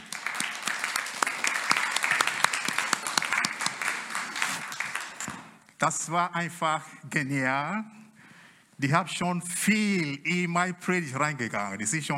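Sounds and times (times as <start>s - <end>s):
congregation applauding: 0.0s - 5.6s
speech: 5.8s - 8.0s, 8.8s - 12.1s.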